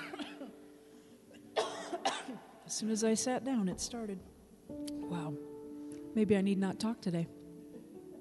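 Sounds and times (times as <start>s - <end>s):
person coughing during a guided meditation: 0.0s - 0.6s, 1.3s - 2.5s
soft breathy noises: 0.7s - 1.5s
speech: 2.7s - 4.3s, 6.2s - 7.4s.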